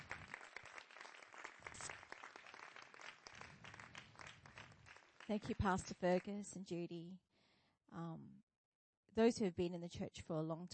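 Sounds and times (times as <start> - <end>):
crowd applauding: 0.0 - 6.0
speech: 5.3 - 7.2, 7.9 - 8.5, 9.2 - 10.7.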